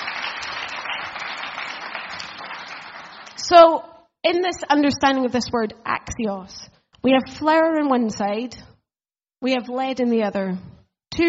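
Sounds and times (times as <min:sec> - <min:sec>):
small audience applause: 0:00.0 - 0:03.4
speech: 0:03.5 - 0:08.7, 0:09.4 - 0:11.2.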